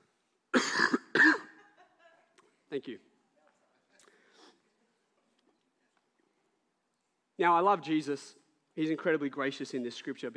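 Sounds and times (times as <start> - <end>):
person coughing harshly: 0.5 - 1.6
speech: 2.7 - 3.1, 7.4 - 10.3.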